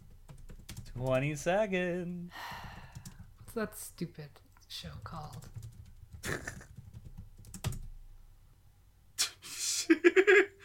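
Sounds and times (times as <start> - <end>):
furious typing on a computer keyboard: 0.0 - 1.4, 2.6 - 3.4, 4.9 - 7.9
speech: 1.0 - 2.6, 3.6 - 6.6.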